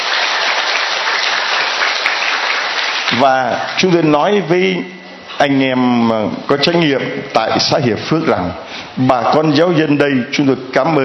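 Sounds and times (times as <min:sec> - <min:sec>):
crowd clapping at a Catholic mission gathering in Hiệp Phước commune Vietnam: 0:00.0 - 0:03.6
speech: 0:03.2 - 0:11.0.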